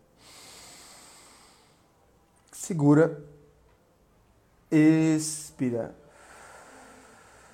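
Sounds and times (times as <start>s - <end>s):
person inhaling deeply during a breathing exercise: 0.2s - 1.9s, 6.0s - 7.5s
speech: 2.7s - 3.3s, 4.7s - 6.0s.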